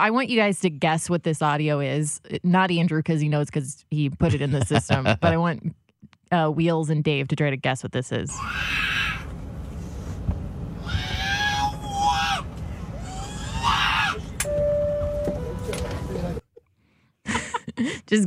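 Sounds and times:
speech: 0.0s - 9.0s
steady low plane cabin roar: 8.3s - 16.4s
baby wailing and shrieking on a plane: 8.4s - 9.3s, 10.8s - 14.4s.

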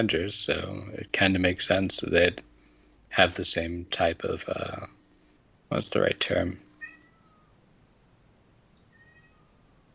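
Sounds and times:
speech: 0.0s - 2.5s, 3.1s - 5.0s, 5.7s - 6.6s
steady low hum: 0.0s - 9.9s
cat meowing: 6.8s - 7.6s, 8.8s - 9.9s.

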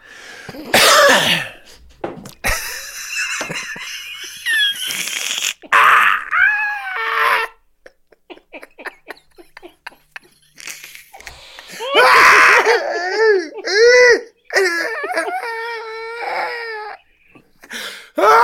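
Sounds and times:
wheezing gasps: 0.0s - 0.7s, 10.8s - 12.0s, 17.6s - 18.2s
person coughing: 0.5s - 1.7s
laughter: 2.4s - 6.0s, 7.1s - 16.0s.

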